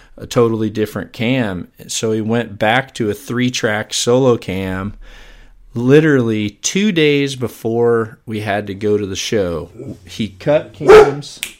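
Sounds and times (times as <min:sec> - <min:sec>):
speech: 0:00.2 - 0:05.2, 0:05.8 - 0:11.5
dog barking: 0:10.8 - 0:11.3.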